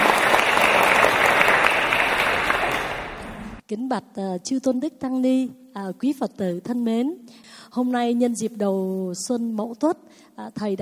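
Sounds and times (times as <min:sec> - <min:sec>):
audience applause: 0:00.0 - 0:03.6
speech: 0:03.7 - 0:10.7.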